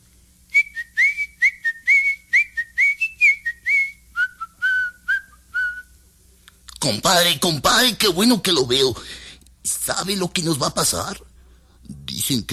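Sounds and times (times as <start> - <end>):
bright cheerful whistled tune from a mouse: 0.5 - 6.0
speech: 6.9 - 9.2, 9.9 - 11.3, 12.3 - 12.5.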